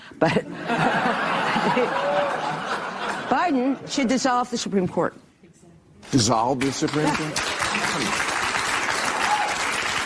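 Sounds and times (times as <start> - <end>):
laughter: 0.2 - 3.9
speech: 0.2 - 5.3, 6.1 - 8.2
audience clapping: 6.0 - 10.0.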